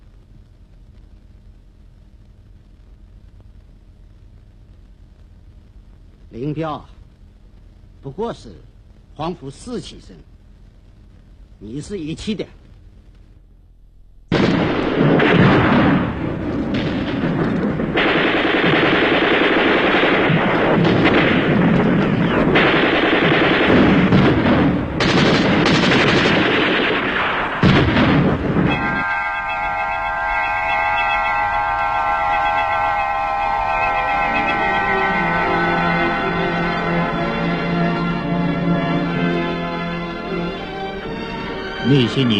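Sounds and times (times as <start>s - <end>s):
speech: 6.4s - 7.0s, 8.0s - 10.3s, 11.6s - 12.6s, 42.2s - 42.3s
wartime gunfire and artillery fire: 14.3s - 42.3s
tonal music-like drone: 28.7s - 41.8s.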